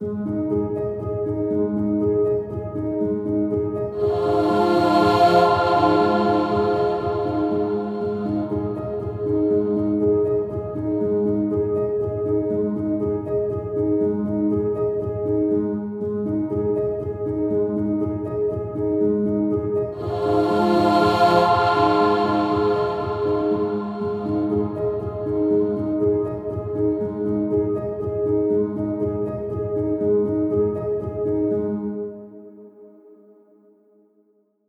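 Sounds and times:
piano playing in A-flat major: 0.5 - 32.3.

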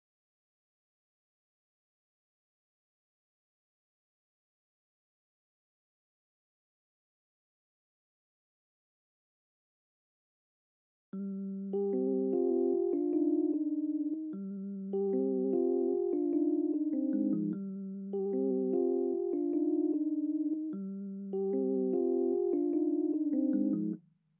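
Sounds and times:
keys playing in C minor: 11.7 - 24.0.

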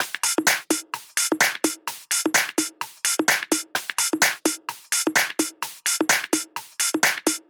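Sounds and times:
house shuffle top drum loop at 128 BPM: 0.0 - 7.4.

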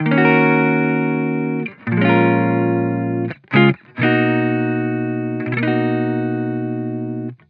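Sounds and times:
chill guitar loop in D sharp major: 0.0 - 7.4.

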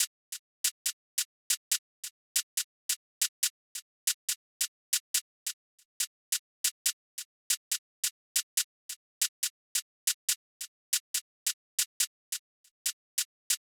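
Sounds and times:
drill hi-hat drum loop: 0.0 - 13.6.

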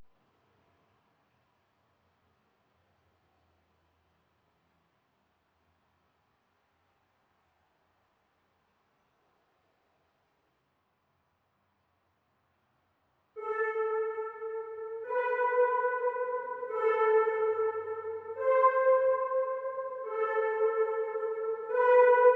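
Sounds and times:
trap synth melody loop: 13.4 - 22.3.

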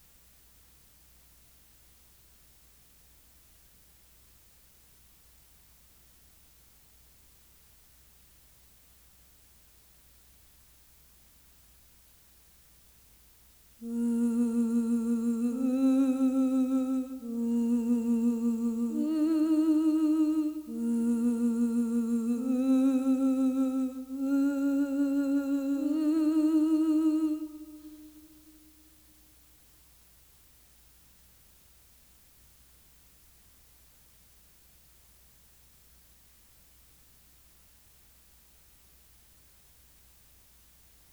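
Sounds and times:
vocal loop stem in A sharp minor: 13.8 - 29.3.

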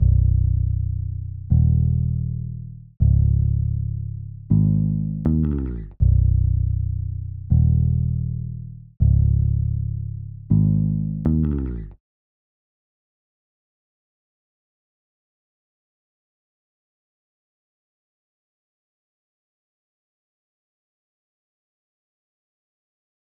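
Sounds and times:
160 BPM D sharp minor bass: 0.0 - 12.0.

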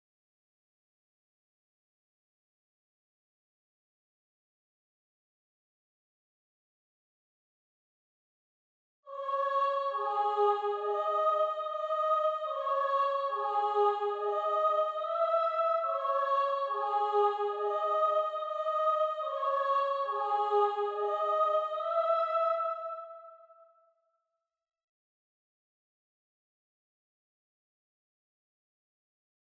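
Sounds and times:
choir melody loop for drill music: 9.1 - 23.6.

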